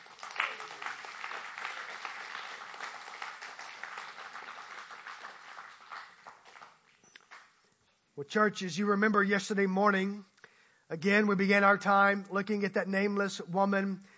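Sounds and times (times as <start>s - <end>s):
crowd clapping for students: 0.0s - 7.6s
speech: 8.2s - 10.3s, 10.9s - 14.1s.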